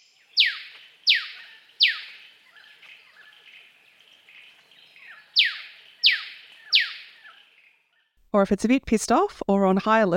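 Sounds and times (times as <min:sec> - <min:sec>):
Eastern Yellow Robin choo-choo call: 0:00.0 - 0:03.3, 0:05.0 - 0:07.5
speech: 0:08.4 - 0:10.1.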